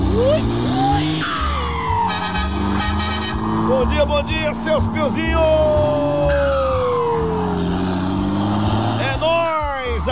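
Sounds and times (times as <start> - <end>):
loud car engine revving: 0.0 - 10.1
speech: 0.2 - 0.7, 3.8 - 6.8
bright horn-like tone: 1.2 - 3.8.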